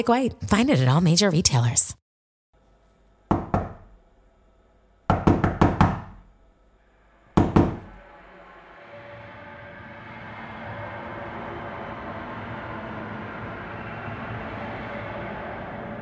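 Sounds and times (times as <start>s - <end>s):
speech: 0.0s - 2.0s
sharp knocks on a door: 3.3s - 4.0s, 5.1s - 6.3s, 7.4s - 8.0s.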